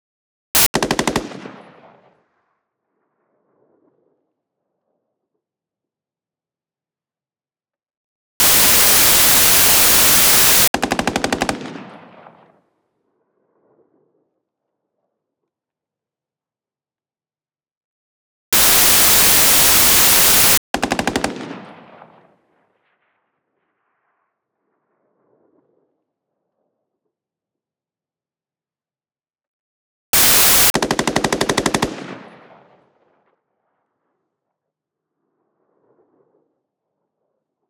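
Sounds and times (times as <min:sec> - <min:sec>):
distant XM8 battle rifle automatic fire outdoors: 0:00.6 - 0:02.1, 0:08.4 - 0:12.5, 0:18.6 - 0:22.3, 0:30.2 - 0:32.8.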